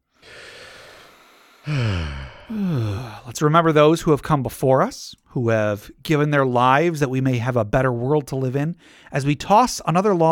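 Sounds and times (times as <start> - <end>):
deep inhale: 0.0 - 3.4, 8.8 - 9.1
sighing exhale: 0.1 - 3.3
speech: 1.7 - 10.2.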